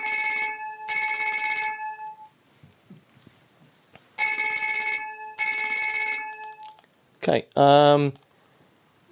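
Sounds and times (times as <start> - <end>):
synthesized bell tones rebuilt from vibrational modes: 0.0 - 2.4, 4.2 - 6.8
speech: 7.2 - 8.2.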